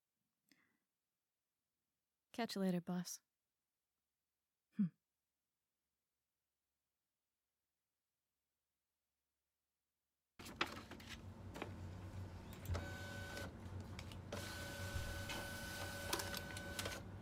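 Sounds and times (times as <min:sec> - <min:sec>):
speech: 0:02.4 - 0:03.3, 0:04.8 - 0:05.0
photocopier whirring and humming while making copies: 0:11.5 - 0:17.1.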